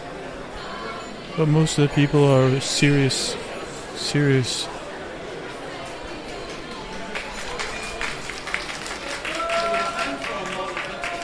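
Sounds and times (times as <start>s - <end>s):
speech: 1.4s - 3.4s, 4.0s - 4.8s
audience applause for a model: 6.1s - 11.2s.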